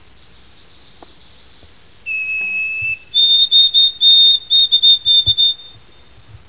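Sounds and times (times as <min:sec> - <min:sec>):
white-throated sparrow: 0:00.2 - 0:05.8.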